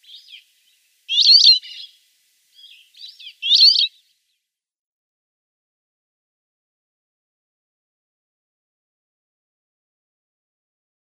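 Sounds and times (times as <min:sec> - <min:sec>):
rock sparrow singing: 0:00.0 - 0:04.1.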